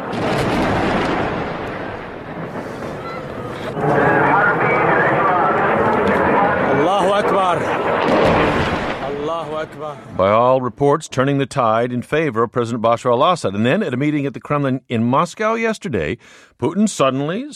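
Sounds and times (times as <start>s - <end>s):
heavy rumbling booms of bombs dropped by military planes: 0.0s - 10.5s
roaring military aircraft drone: 1.7s - 10.1s
speech: 9.6s - 17.5s.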